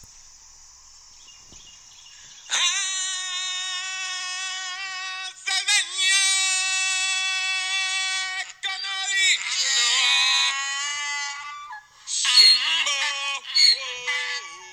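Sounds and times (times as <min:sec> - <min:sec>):
donkey braying: 0:02.1 - 0:14.7
man's voice singing along: 0:02.5 - 0:14.7.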